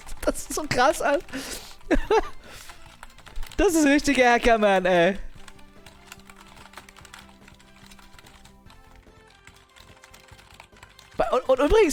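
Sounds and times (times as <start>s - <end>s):
faint music: 0.0s - 11.9s
rapid continuous clatter of keys on a computer keyboard: 0.0s - 11.9s
speech: 0.3s - 2.7s, 3.6s - 5.3s, 11.3s - 11.9s.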